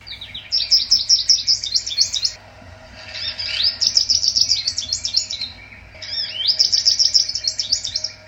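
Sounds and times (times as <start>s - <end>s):
American goldfinch calling: 0.0s - 2.4s, 3.0s - 8.2s.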